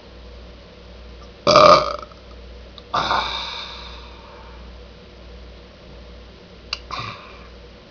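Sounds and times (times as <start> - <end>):
person burping: 1.5 - 2.2, 2.9 - 3.9, 6.8 - 7.5.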